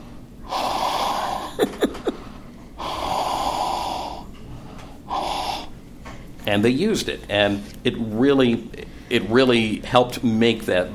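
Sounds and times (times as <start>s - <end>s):
man breathing heavily into a microphone: 0.0s - 6.0s
speech: 6.5s - 10.9s.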